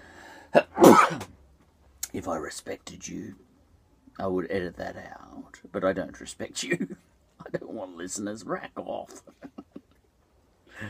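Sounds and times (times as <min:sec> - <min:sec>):
speech: 0:00.5 - 0:01.2, 0:02.2 - 0:03.5, 0:04.2 - 0:07.0, 0:07.8 - 0:09.4
person sneezing loudly: 0:00.6 - 0:01.3.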